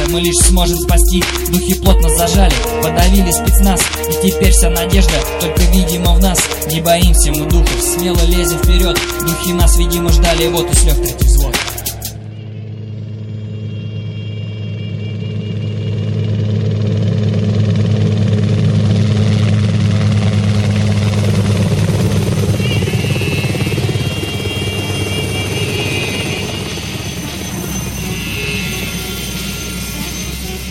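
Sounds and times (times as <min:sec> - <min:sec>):
helicopter rotor and engine droning: 0:00.0 - 0:30.6
speech: 0:00.1 - 0:11.7.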